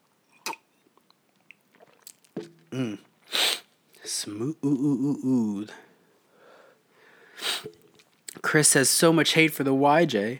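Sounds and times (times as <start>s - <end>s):
sipping bourbon from a glass: 0.2s - 4.2s, 7.4s - 8.4s
mouth clicks: 0.4s - 0.8s, 1.5s - 3.7s, 7.4s - 8.4s
person humming: 2.7s - 3.1s, 4.3s - 5.8s
speech: 2.7s - 3.4s, 4.1s - 5.8s, 8.5s - 10.3s
breathy exhale: 6.3s - 7.8s.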